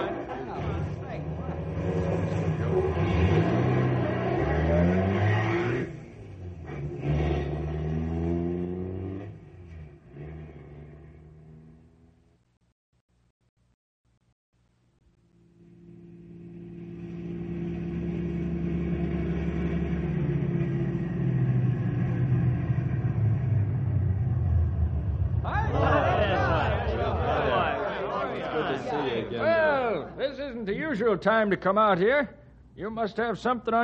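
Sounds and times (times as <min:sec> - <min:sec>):
car engine revving as the car drives off: 0:00.5 - 0:12.3, 0:15.8 - 0:27.8
laughter: 0:25.5 - 0:30.1
speech: 0:31.1 - 0:33.8.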